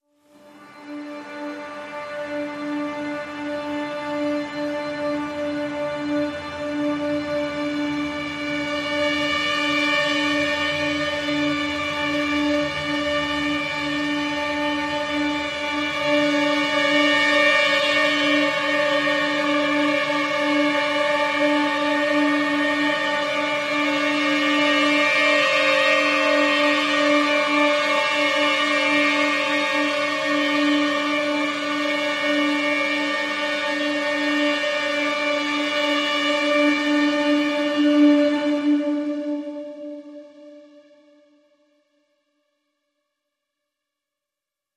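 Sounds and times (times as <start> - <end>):
uneasy string pad in D: 0.3 - 40.9.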